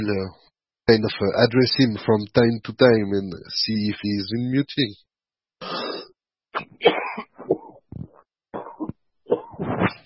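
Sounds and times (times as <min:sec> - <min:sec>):
speech: 0:00.0 - 0:05.8
person coughing harshly: 0:06.6 - 0:07.8, 0:08.6 - 0:10.0.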